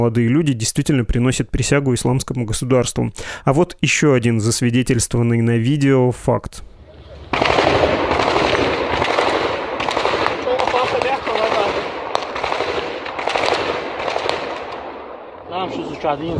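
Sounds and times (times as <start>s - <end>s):
speech: 0.0s - 6.7s, 15.6s - 16.3s
gunfire exchange in a city street: 7.3s - 15.2s.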